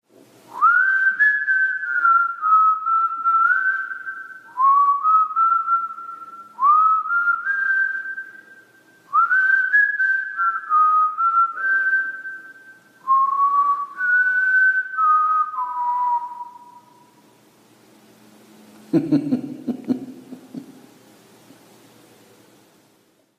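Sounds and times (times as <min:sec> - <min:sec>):
man whistling: 0:00.5 - 0:17.2
laughter: 0:18.9 - 0:20.8.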